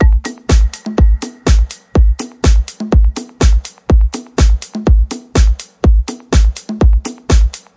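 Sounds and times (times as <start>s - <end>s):
bouncy conga rock house music: 0.0s - 7.7s.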